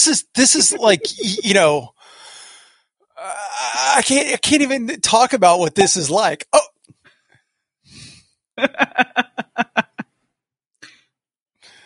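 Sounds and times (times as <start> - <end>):
speech: 0.0 - 2.0, 4.0 - 6.7, 8.6 - 9.8
laughter: 0.4 - 1.8, 8.6 - 10.0
person exhaling: 7.9 - 8.2
person sniffing an opened bottle: 7.9 - 8.3.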